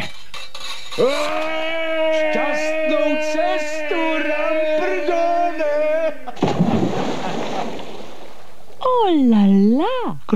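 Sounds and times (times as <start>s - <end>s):
laughter: 0.9s - 8.4s
speech: 1.0s - 1.5s, 9.0s - 10.3s
heavy splash as a man falls into a well: 6.4s - 8.8s.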